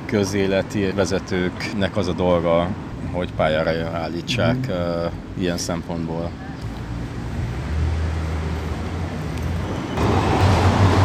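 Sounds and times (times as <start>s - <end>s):
city traffic on a busy boulevard: 0.0s - 11.0s
speech: 0.1s - 6.5s.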